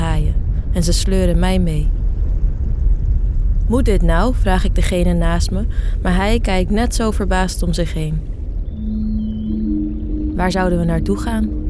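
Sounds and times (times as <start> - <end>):
deep underwater rumble: 0.0 - 11.6
speech: 0.7 - 2.0, 3.7 - 9.0, 10.4 - 11.6
whale call underwater: 8.6 - 11.6.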